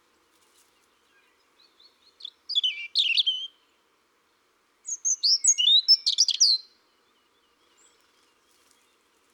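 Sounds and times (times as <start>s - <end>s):
European robin song of thin slurred whistles and scratchy twitter: 2.2s - 3.6s, 4.9s - 6.7s.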